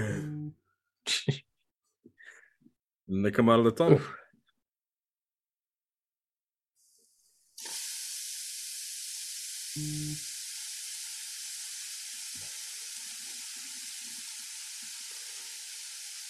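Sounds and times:
speech: 3.1 - 4.2
food sizzling in a hot pan: 6.8 - 16.2.

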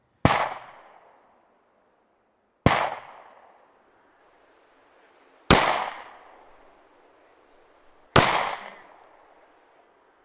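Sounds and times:
loud gunshots with long decay: 0.2 - 1.4, 2.6 - 3.6, 5.5 - 6.6, 8.1 - 9.4.

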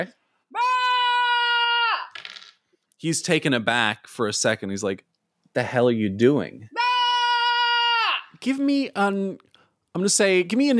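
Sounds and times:
speech: 0.0 - 0.2, 3.0 - 6.8, 8.4 - 10.7
person screaming: 0.5 - 2.2, 6.7 - 8.4.

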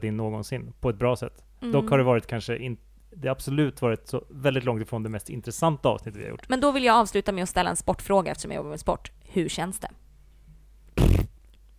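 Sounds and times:
speech: 0.0 - 10.0
fart: 11.0 - 11.4.

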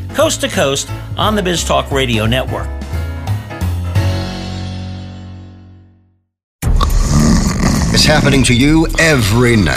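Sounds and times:
speech: 0.2 - 2.9, 8.1 - 9.7
person snoring: 6.6 - 9.7.

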